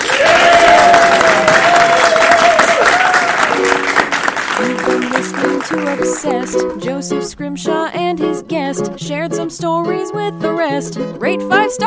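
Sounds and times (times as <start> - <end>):
live audience applauding: 0.0 - 6.7
speech: 6.5 - 11.8.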